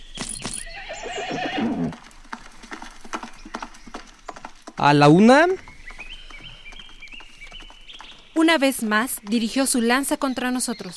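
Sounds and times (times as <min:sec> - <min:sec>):
horse hooves clip-clopping: 0:00.0 - 0:10.9
horse neighing: 0:00.6 - 0:08.4
speech: 0:04.8 - 0:05.7, 0:08.4 - 0:10.9.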